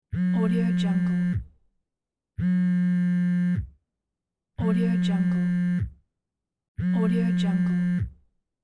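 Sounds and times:
phone vibrating: 0.1s - 1.5s, 2.4s - 3.7s, 4.6s - 5.9s, 6.8s - 8.1s.

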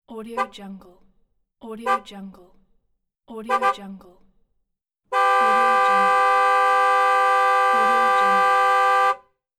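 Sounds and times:
car horn: 3.5s - 3.8s, 5.1s - 9.4s.

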